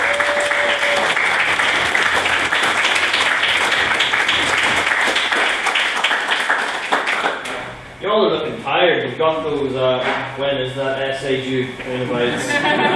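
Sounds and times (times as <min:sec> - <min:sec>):
applause from a sizable audience: 0:00.0 - 0:07.5
speech: 0:09.1 - 0:12.9
laughter: 0:12.2 - 0:12.9.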